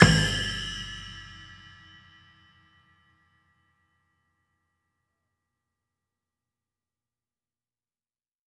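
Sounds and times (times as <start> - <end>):
snare drum one shot: 0.0 - 1.8
splash cymbal one shot: 0.0 - 2.5.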